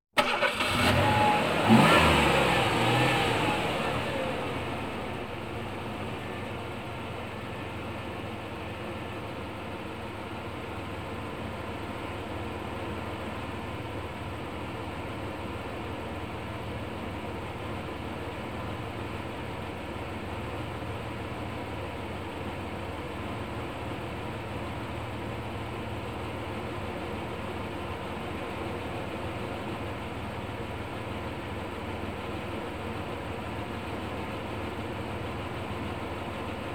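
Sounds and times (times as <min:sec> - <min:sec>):
automobile engine starting: 0:00.2 - 0:36.7.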